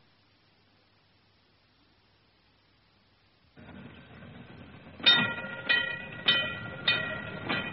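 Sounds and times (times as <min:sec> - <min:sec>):
metallic clunks of tram wheels crossing rail joints: 0:03.6 - 0:07.7
tram rumbling along its rails: 0:03.6 - 0:07.7.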